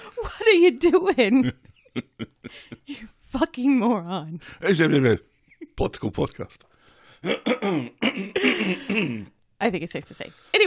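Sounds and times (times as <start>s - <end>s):
speech: 0.2s - 10.6s
person with a tickle in the throat clearing it: 7.2s - 9.3s.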